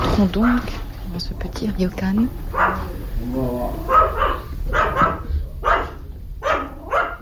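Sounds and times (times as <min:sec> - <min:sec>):
speech: 0:00.2 - 0:04.5
dog barking at a small ryokan as visitors enter: 0:02.5 - 0:03.0, 0:03.8 - 0:07.1.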